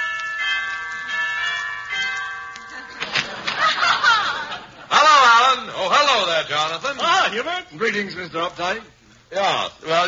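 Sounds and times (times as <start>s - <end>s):
doorbell chime with sustained layered tones: 0.0s - 3.9s
people chattering: 0.8s - 10.0s
people laughing: 2.7s - 5.4s
speech: 6.5s - 10.0s.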